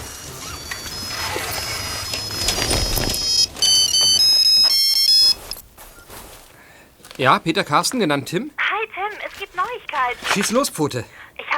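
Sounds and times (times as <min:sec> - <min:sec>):
mobile phone ringing inside a backpack: 0:00.0 - 0:05.6
faint noise: 0:00.0 - 0:11.5
speech: 0:07.2 - 0:08.6, 0:10.0 - 0:11.2.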